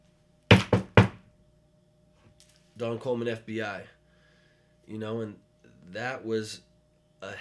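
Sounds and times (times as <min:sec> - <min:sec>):
firm knocking on a door: 0:00.5 - 0:01.2
speech: 0:02.8 - 0:04.0, 0:04.9 - 0:07.3.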